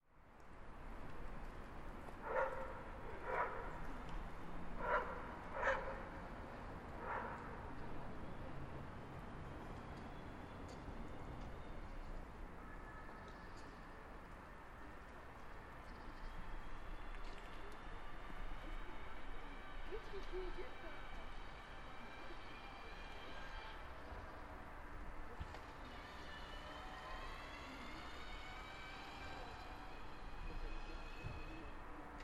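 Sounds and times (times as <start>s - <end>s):
street sounds: 0.1s - 32.2s.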